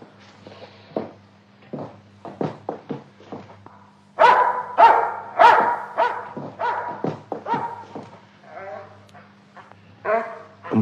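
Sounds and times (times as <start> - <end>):
small dog barking: 4.2 - 8.0.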